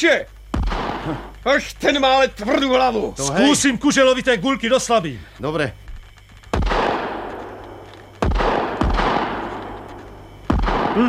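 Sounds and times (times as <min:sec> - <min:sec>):
speech: 0:00.0 - 0:00.3, 0:01.0 - 0:05.8
rifle shots: 0:00.5 - 0:01.3, 0:06.4 - 0:11.0
long rolling echo of rifle shots: 0:00.6 - 0:01.1, 0:06.6 - 0:07.4, 0:08.2 - 0:09.6, 0:10.5 - 0:11.0.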